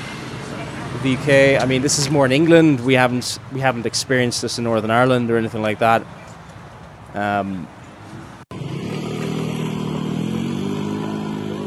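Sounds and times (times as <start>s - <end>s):
idling engines of road traffic at a standstill at a blocked junction: 0.0s - 11.6s
speech: 0.9s - 6.2s, 7.1s - 7.8s.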